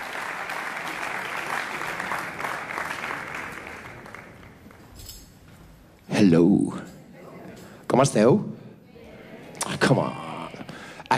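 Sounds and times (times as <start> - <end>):
concert audience applause: 0.0 - 4.8
speech: 6.2 - 6.9, 8.0 - 8.5.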